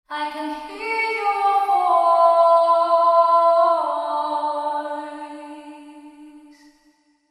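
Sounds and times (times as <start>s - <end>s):
echo chamber cave reverb: 0.2s - 7.2s.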